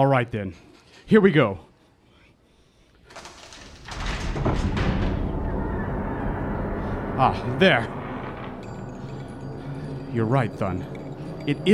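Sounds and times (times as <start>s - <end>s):
speech: 0.0s - 1.7s, 7.2s - 8.0s, 10.1s - 11.7s
heavy palace door with steel bolts grinding open: 3.1s - 11.7s
steady low rumble: 3.5s - 11.7s.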